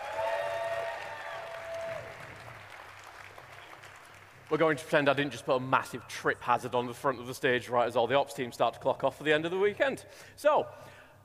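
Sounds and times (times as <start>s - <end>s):
conference audience applause: 0.0s - 4.8s
speech: 4.5s - 11.0s.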